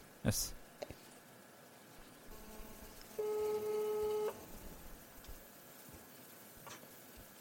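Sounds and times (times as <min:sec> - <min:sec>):
speech: 0:00.2 - 0:00.6
electronic ringback tone on a phone line: 0:03.2 - 0:04.4.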